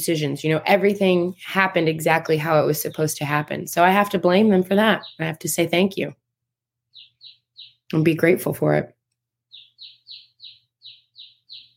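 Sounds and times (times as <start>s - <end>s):
speech: 0.0s - 6.2s, 7.9s - 9.0s
baby chick chirping: 4.6s - 5.9s, 6.9s - 8.0s, 9.5s - 11.7s.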